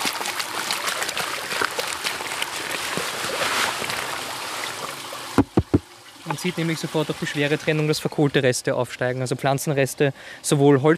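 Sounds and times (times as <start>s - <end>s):
bucket of soil tipped into a barrel of water, splashing and gurgling: 0.0s - 7.4s
sharp knocks: 5.4s - 5.9s
speech: 6.4s - 10.9s.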